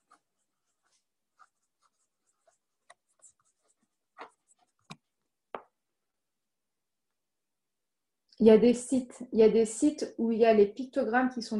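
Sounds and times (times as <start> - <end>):
pen scratching across paper writing a note by hand: 0.0 - 5.2
speech: 8.4 - 11.5.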